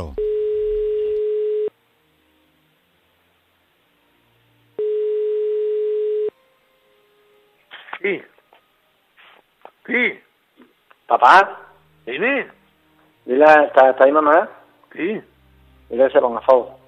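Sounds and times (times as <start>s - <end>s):
speech: 0.0s - 0.2s, 8.0s - 8.3s, 9.8s - 10.3s, 11.1s - 12.6s, 13.3s - 15.3s, 15.9s - 16.8s
telephone ringing tone on an outgoing call: 0.2s - 1.7s, 4.8s - 6.4s.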